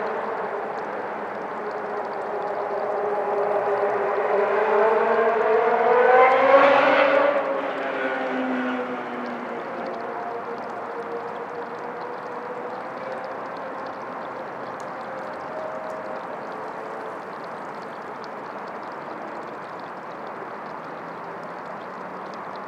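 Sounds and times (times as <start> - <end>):
steady traffic hum by a riverside trail: 0.0 - 22.6
vehicle passing with a falling whine on a riverside trail: 2.1 - 14.4.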